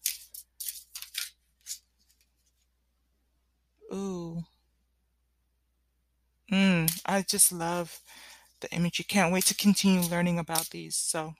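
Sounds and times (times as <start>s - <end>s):
Kemetic Tarot deck of about 60 cards being shuffled: 0.0s - 2.7s, 8.9s - 11.1s
speech: 7.1s - 11.3s.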